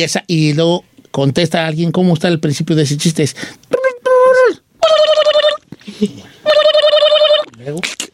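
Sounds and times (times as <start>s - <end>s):
speech: 0.0s - 3.7s
voice imitating a telephone ringing: 4.8s - 5.6s, 6.5s - 7.6s.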